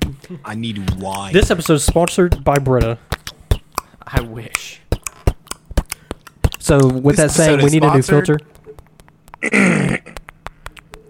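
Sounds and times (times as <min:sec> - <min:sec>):
speech: 0:00.2 - 0:03.1, 0:04.0 - 0:04.8, 0:06.7 - 0:08.6, 0:09.4 - 0:10.2
faint clicks and small mouth noises: 0:00.9 - 0:07.0, 0:08.5 - 0:11.0
loud rough throat clearing: 0:09.4 - 0:10.2.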